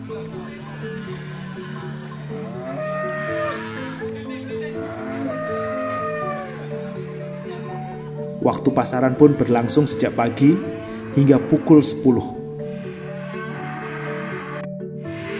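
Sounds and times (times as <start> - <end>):
busy crowd murmur: 0.0 - 8.4
cattle mooing at a livestock market: 0.7 - 4.1, 4.7 - 7.0, 8.9 - 15.3
speech: 8.4 - 12.4.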